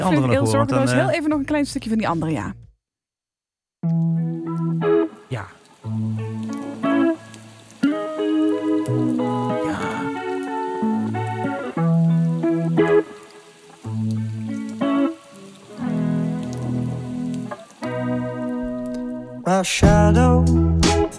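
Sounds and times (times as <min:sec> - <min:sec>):
speech: 0:00.0 - 0:02.6, 0:03.8 - 0:04.2, 0:19.6 - 0:20.6
mellow song of sustained layered melodic notes: 0:03.8 - 0:21.1
soft raindrop patter: 0:03.9 - 0:20.1.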